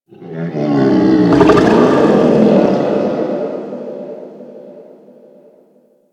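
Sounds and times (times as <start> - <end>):
distant animal sounds in a settlement: 1.1 - 3.2.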